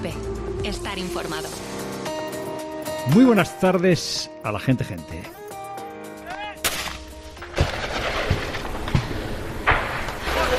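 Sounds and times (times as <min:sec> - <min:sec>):
speech: 0:00.0 - 0:01.8, 0:03.0 - 0:05.4
gunfire and artillery from fighting between Azerbaijani and Armenian forces: 0:06.6 - 0:10.5.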